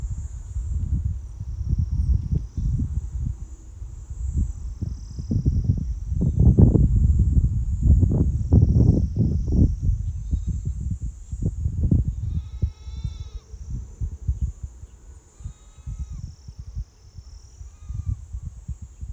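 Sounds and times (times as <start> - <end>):
high insect drone by a lake in a valley: 0.0 - 19.1
low rumbling gusts: 0.0 - 19.1
faint bird or animal calls: 12.1 - 13.7, 14.4 - 16.7, 17.4 - 18.4.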